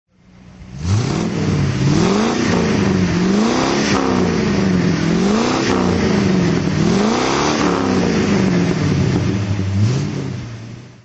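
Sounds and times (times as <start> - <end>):
HK500 engine throttle: 0.1 - 11.0.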